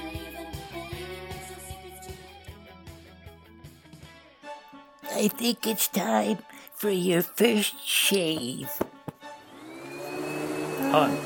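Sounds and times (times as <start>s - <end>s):
speech: 5.2s - 8.8s, 10.9s - 11.2s
vacuum cleaner running: 9.1s - 11.2s.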